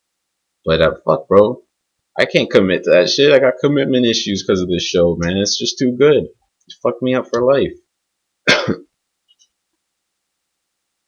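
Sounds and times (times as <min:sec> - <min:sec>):
speech: 0:00.6 - 0:01.6, 0:02.2 - 0:07.8, 0:08.7 - 0:08.9
single harsh loud cough: 0:08.4 - 0:08.9
brief rough throat-clearing rasp: 0:08.5 - 0:08.9.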